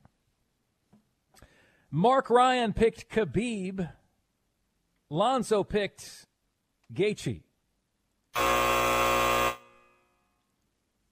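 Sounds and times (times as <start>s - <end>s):
speech: 1.9s - 4.0s, 5.1s - 6.3s, 6.9s - 7.5s
buzzer blaring after being hit: 8.4s - 10.1s.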